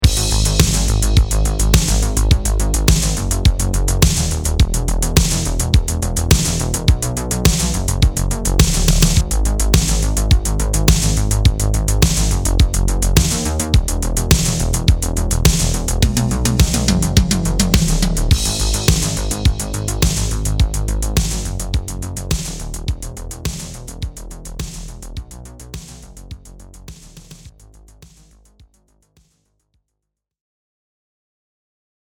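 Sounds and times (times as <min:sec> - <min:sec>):
dry 80s synthwave music: 0:00.0 - 0:07.8, 0:08.5 - 0:26.1.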